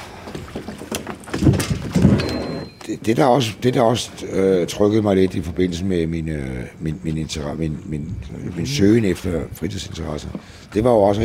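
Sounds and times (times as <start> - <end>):
mooring rope handled aboard a sailboat, rustling and knocking: 0.0 - 2.8
water: 0.0 - 11.2
wind: 0.0 - 11.2
speech: 2.9 - 11.2.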